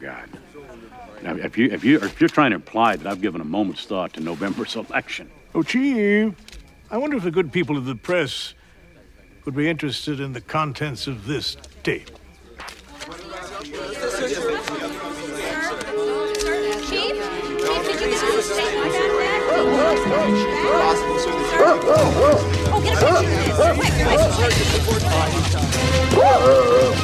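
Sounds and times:
busy noise: 0.0s - 27.0s
speech: 0.1s - 8.6s, 9.4s - 12.2s, 19.6s - 27.0s
pack of bloodhounds barking and baying in pursuit: 17.0s - 27.0s.

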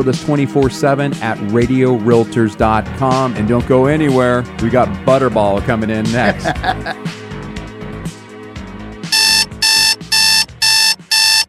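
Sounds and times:
speech: 0.0s - 7.2s
music: 0.0s - 11.4s
laughter: 6.2s - 7.0s
alarm clock ringing as a wake-up call: 9.2s - 11.4s.

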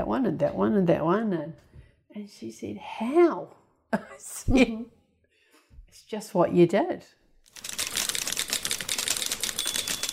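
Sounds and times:
speech: 0.0s - 5.0s, 5.9s - 7.2s
typewriter keys clacking: 7.5s - 10.1s.

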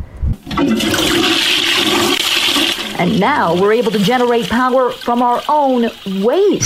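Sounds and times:
toilet flushing: 0.4s - 6.6s
speech: 3.0s - 6.6s.

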